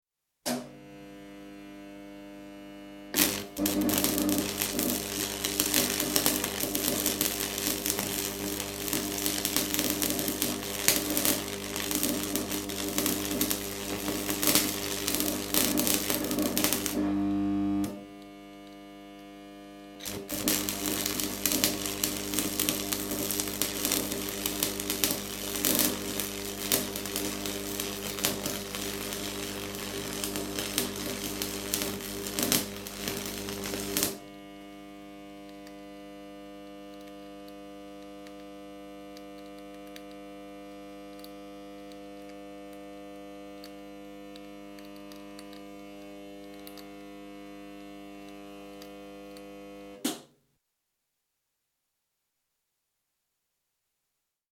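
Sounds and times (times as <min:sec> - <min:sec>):
arc welding machine switch: 0:00.4 - 0:00.9, 0:03.1 - 0:18.8, 0:20.0 - 0:34.3, 0:43.6 - 0:47.1, 0:47.8 - 0:50.4
arc welding machine welding: 0:00.5 - 0:50.3.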